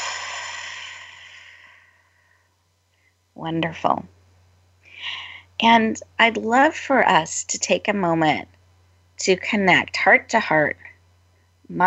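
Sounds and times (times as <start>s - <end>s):
deep breath exhaled through the mouth during a guided relaxation exercise: 0.0s - 2.0s
speech: 3.4s - 4.2s, 5.6s - 8.6s, 9.2s - 10.9s.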